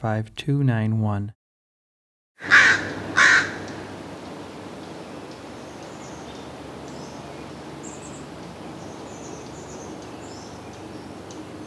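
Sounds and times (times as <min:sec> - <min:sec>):
speech: 0:00.0 - 0:01.4
Northwestern Crow cawing: 0:02.4 - 0:04.0.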